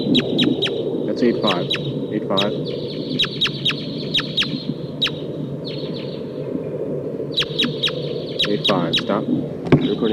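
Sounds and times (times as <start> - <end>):
red crossbill call notes, probably sitkensis call type: 0.0 - 6.3, 7.3 - 10.0
steady low rumbling noise: 0.0 - 10.1
speech: 1.2 - 2.9, 8.7 - 10.1.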